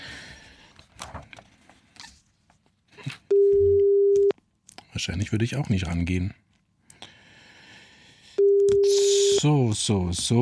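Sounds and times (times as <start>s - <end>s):
telephone ringing tone on an outgoing call: 3.3s - 4.3s, 8.4s - 9.4s
speech: 5.0s - 6.5s, 9.4s - 10.4s.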